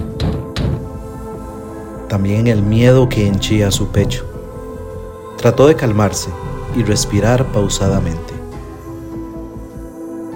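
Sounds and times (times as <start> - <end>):
heavy booming knocks on a door: 0.0 - 1.2
speech: 2.1 - 4.3, 5.4 - 8.3.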